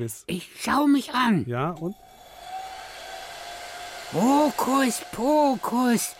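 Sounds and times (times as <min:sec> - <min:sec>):
speech: 0:00.0 - 0:02.1, 0:04.1 - 0:06.1
hair dryer blowing with faint motor whine: 0:02.0 - 0:06.1.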